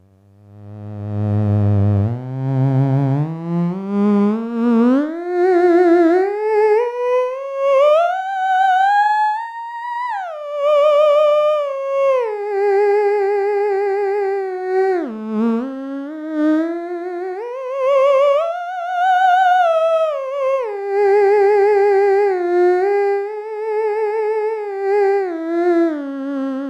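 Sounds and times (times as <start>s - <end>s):
theremin: 0.6s - 26.6s.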